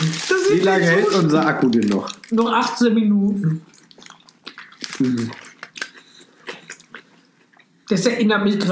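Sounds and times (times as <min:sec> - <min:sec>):
speech: 0:00.2 - 0:03.7, 0:05.0 - 0:05.4, 0:07.9 - 0:08.7
loud open-mouth chewing with wet smacking clicks: 0:03.6 - 0:07.8.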